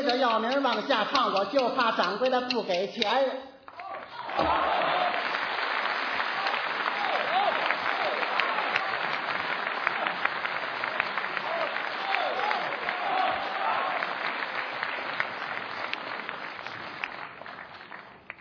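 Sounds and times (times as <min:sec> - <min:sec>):
speech: 0:00.1 - 0:03.6, 0:04.4 - 0:04.9
audience applause: 0:03.8 - 0:18.4.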